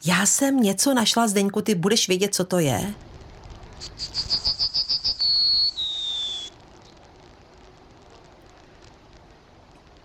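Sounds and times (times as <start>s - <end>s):
speech: 0.0s - 3.1s
yellowhammer singing: 3.8s - 6.5s.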